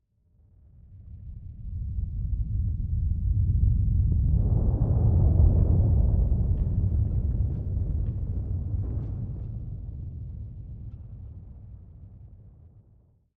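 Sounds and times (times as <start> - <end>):
earthquake rumble weather effect: 1.6 - 12.9.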